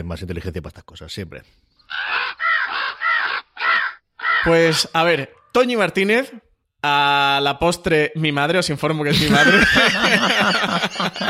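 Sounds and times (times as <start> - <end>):
speech: 0.0 - 2.2, 4.4 - 11.2
crow cawing: 1.9 - 4.6
laughter: 9.1 - 11.2.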